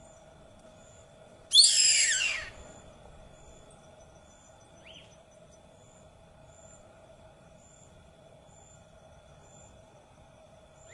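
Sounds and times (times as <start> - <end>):
faint steady hum: 0.0 - 10.9
white hawk scream: 1.5 - 2.6.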